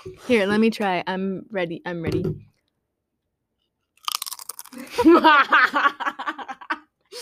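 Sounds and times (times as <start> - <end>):
speech: 0.1 - 2.5, 4.8 - 6.4
stacked potato crisps crunched and chewed: 4.0 - 4.9
person giggling: 4.8 - 6.9.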